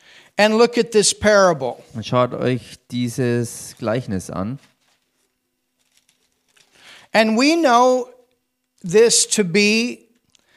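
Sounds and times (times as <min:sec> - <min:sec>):
speech: 0:00.4 - 0:04.7, 0:07.1 - 0:08.1, 0:08.8 - 0:10.0
thin Bible pages being flipped: 0:03.6 - 0:06.9.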